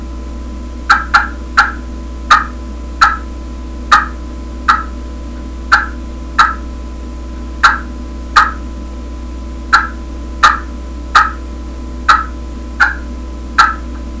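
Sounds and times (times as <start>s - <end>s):
slate clucks: 0.9s - 3.3s, 3.9s - 4.9s, 5.7s - 6.6s, 7.6s - 8.6s, 9.7s - 11.4s, 12.1s - 13.0s, 13.6s - 14.0s.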